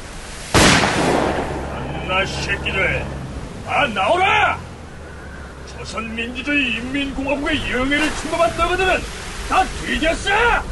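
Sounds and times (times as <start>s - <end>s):
wind and rain over open water during a storm: 0.0s - 10.7s
gunshot over a dark sea during a storm: 0.5s - 1.8s
speech: 2.1s - 4.6s, 5.8s - 10.7s.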